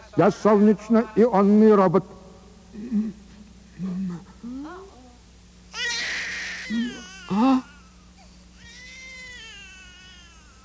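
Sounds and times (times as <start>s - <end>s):
faint steady hum: 0.0s - 10.6s
speech: 0.2s - 2.2s, 7.4s - 7.7s
newborn baby boy crying: 5.7s - 7.9s, 8.6s - 10.6s.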